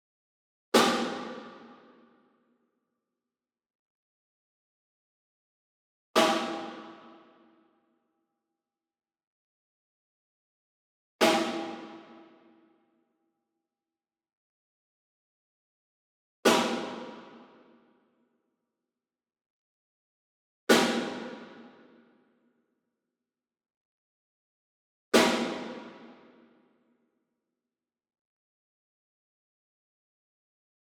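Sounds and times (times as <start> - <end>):
single snare drum block rim hit: 0.8 - 1.6, 6.2 - 7.0, 11.2 - 11.9, 16.5 - 17.3, 20.7 - 21.5, 25.2 - 26.1.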